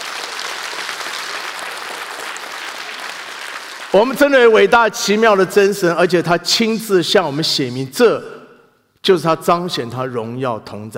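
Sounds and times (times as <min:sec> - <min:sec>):
sustained applause from a large audience: 0:00.0 - 0:04.1
speech: 0:03.9 - 0:08.4, 0:09.0 - 0:10.9.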